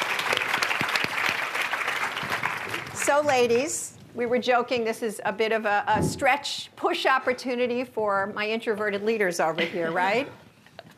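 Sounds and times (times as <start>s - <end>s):
audience applause at a panel event: 0.0s - 3.2s
speech: 3.1s - 10.4s.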